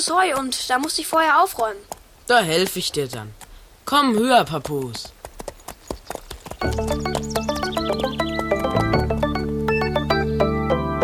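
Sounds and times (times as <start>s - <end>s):
speech: 0.0s - 5.2s
horse hooves clip-clopping as a horse is ridden: 0.0s - 10.5s
sustained music: 6.6s - 11.0s.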